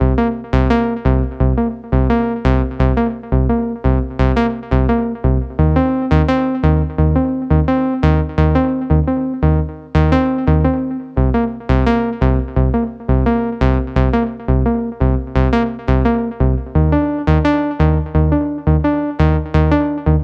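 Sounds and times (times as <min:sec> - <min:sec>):
plucked synth loop in C major: 0:00.0 - 0:20.2.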